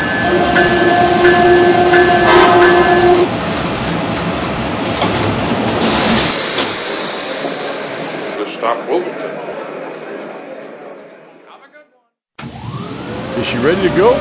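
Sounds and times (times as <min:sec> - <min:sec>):
high sustained tones: 0:00.0 - 0:03.3
passenger train arriving at a station rumbling and hissing: 0:00.0 - 0:11.3, 0:12.7 - 0:14.1.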